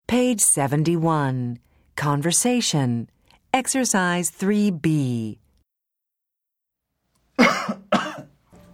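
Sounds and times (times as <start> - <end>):
speech: 0.1 - 5.4
person coughing harshly: 7.4 - 8.4
soft throat-clearing rasp: 7.4 - 8.4.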